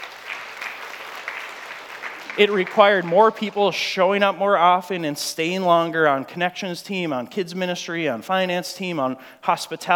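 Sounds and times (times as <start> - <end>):
audience applauding: 0.0 - 3.8
speech: 2.4 - 9.9.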